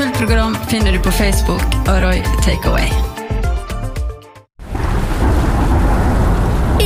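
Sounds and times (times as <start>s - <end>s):
speech: 0.2s - 3.2s
heavy rain pouring down: 4.6s - 6.8s.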